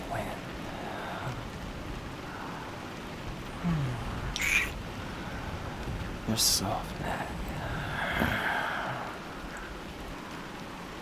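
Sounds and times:
steady rain with soft hiss and patter: 0:00.0 - 0:10.9
speech: 0:03.6 - 0:04.0, 0:06.3 - 0:07.2
brief bird-like call: 0:04.4 - 0:04.8.

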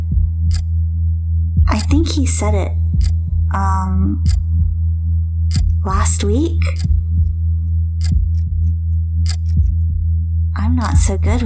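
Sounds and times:
low droning hum: 0:00.0 - 0:11.4
clock ticking: 0:01.6 - 0:02.2, 0:02.9 - 0:03.2, 0:04.2 - 0:04.5, 0:05.5 - 0:07.3, 0:08.0 - 0:08.7, 0:09.3 - 0:09.9
speech: 0:01.9 - 0:04.4, 0:05.5 - 0:07.0, 0:10.6 - 0:11.4.

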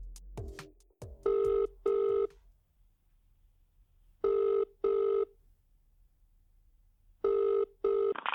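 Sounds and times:
telephone ringing in a double-burst pattern: 0:01.3 - 0:02.3, 0:04.2 - 0:05.3, 0:07.2 - 0:08.2.

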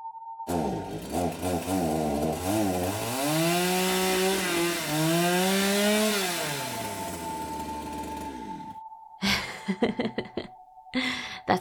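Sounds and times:
chainsaw revving: 0:00.5 - 0:08.8
laughter: 0:09.2 - 0:10.5.

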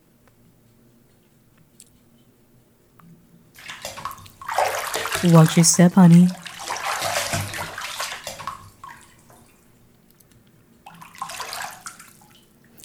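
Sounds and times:
water sloshing and splashing in a bathtub: 0:03.6 - 0:09.8, 0:10.7 - 0:12.8
speech: 0:05.2 - 0:06.4.

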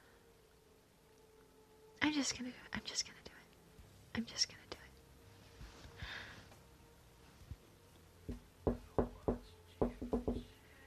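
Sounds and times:
speech: 0:02.1 - 0:03.3, 0:04.2 - 0:04.7
faint breathing: 0:05.4 - 0:06.7
knocking on a door in an uneven rhythm: 0:08.3 - 0:10.5.

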